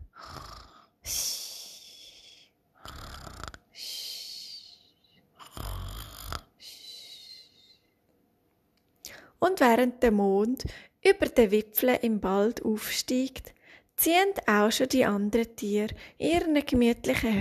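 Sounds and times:
hedgehog snoring softly: 0:00.0 - 0:00.9, 0:02.8 - 0:03.7, 0:05.4 - 0:06.6
speech: 0:09.4 - 0:17.4.

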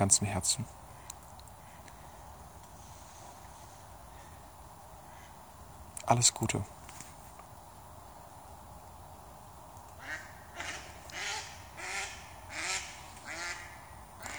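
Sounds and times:
speech: 0:00.0 - 0:00.8, 0:06.1 - 0:06.8
hiss: 0:00.0 - 0:14.3
duck quacking: 0:10.0 - 0:14.3.

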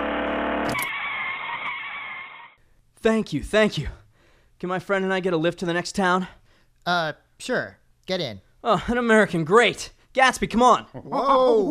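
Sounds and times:
car tire screech skidding to a stop on a main road: 0:00.0 - 0:02.6
speech: 0:03.0 - 0:04.0, 0:04.6 - 0:11.6.

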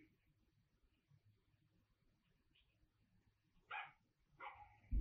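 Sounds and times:
dog barking and yipping: 0:03.7 - 0:04.8.

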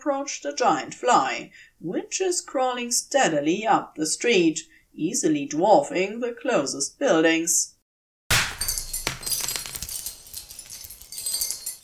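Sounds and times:
speech: 0:00.0 - 0:07.8
glass shards tinkling on the street: 0:08.3 - 0:11.8
glass shattering: 0:08.3 - 0:11.8.

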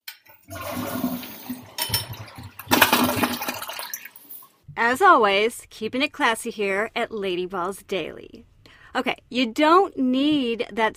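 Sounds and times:
toilet flushing: 0:00.3 - 0:04.5
toilet water draining and gurgling: 0:00.3 - 0:04.6
speech: 0:00.5 - 0:01.0, 0:04.8 - 0:10.9.

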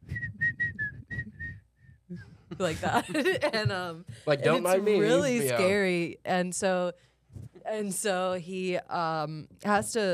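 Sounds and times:
man whistling a short bright tune: 0:00.0 - 0:02.4
speech: 0:02.1 - 0:07.1, 0:07.7 - 0:10.1.

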